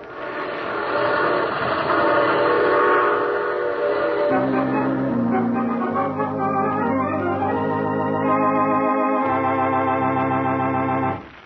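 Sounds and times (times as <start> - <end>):
passenger train rumbling and clattering on rails: 0.0 - 6.4
long sustained horn-like tones: 1.8 - 11.2.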